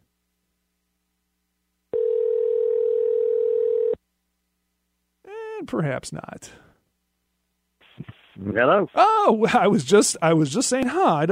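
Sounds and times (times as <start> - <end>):
phone line ringback tone: 1.9 - 4.0
speech: 5.6 - 6.7, 8.4 - 11.3.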